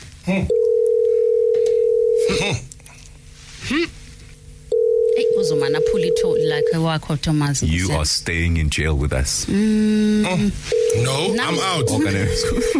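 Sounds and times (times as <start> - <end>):
speech: 0.2 - 0.7, 2.3 - 2.6, 6.8 - 12.7
telephone dial tone during an outgoing call: 0.5 - 2.3, 4.7 - 6.7, 10.8 - 12.7.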